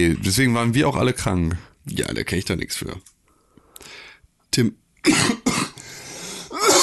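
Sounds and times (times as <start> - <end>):
speech: 0.0 - 3.2, 4.5 - 5.6
hacking exhale: 3.4 - 4.2, 5.8 - 6.6
loud wet cough clearing phlegm from the throat: 5.0 - 5.8, 6.5 - 6.8.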